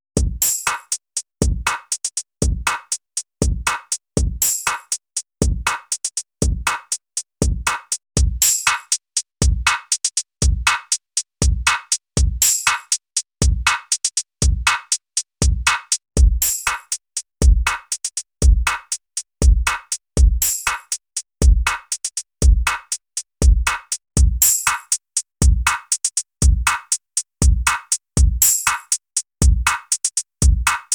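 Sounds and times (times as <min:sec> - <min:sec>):
drum loop through a ten-band graphic EQ: 0:00.2 - 0:30.9.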